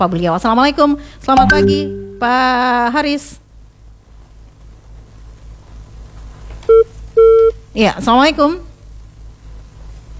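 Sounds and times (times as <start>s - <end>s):
speech: 0.0s - 3.4s, 7.8s - 8.7s
low continuous hum: 0.0s - 10.1s
telephone keypad DTMF beep from dialing a call: 1.4s - 2.3s, 6.7s - 7.5s.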